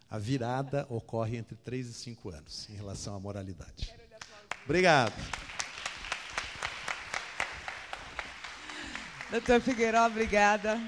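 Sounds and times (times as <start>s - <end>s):
speech: 0.1s - 5.5s, 9.3s - 10.8s
audience applause at a forum: 4.5s - 10.8s.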